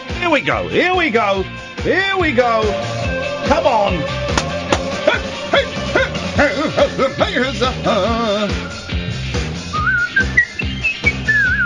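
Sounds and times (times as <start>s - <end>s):
speech: 0.3s - 4.2s
laughter: 4.6s - 8.6s
person whistling: 9.7s - 11.6s.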